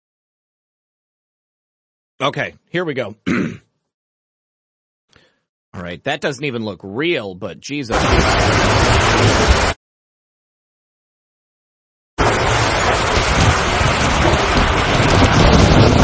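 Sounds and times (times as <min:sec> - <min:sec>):
speech: 0:02.2 - 0:03.6, 0:05.8 - 0:09.7
heavy rain in a tornado storm: 0:07.9 - 0:09.8, 0:12.2 - 0:16.0
roaring tornado wind: 0:07.9 - 0:09.8, 0:12.2 - 0:16.0.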